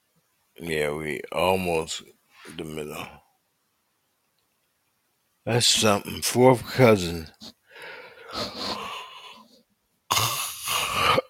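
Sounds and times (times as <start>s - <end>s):
speech: 0.6s - 3.2s, 5.5s - 8.8s
loud airy breath: 7.7s - 9.5s
person yawning with long breathy exhales: 7.8s - 9.4s, 10.1s - 11.2s.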